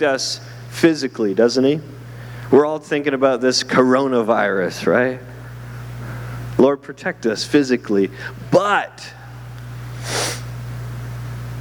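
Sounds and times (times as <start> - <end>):
speech: 0.0 - 5.3, 6.6 - 9.2
steady low electrical hum: 0.0 - 11.5
nasal sniff from someone with the sniffles: 9.9 - 10.5.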